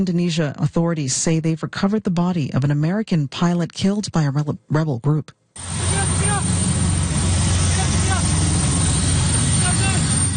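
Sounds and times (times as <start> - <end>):
speech: 0.0 - 6.0
military helicopter descending onto a remote hill in Papua Indonesia: 5.6 - 10.3.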